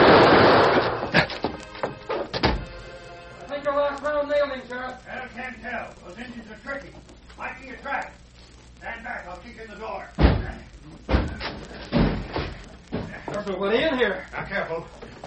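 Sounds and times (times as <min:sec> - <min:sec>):
door slamming shut with heavy bangs: 0:00.0 - 0:02.8, 0:10.2 - 0:13.1
people talking: 0:03.4 - 0:08.2, 0:08.8 - 0:12.0, 0:13.0 - 0:15.0.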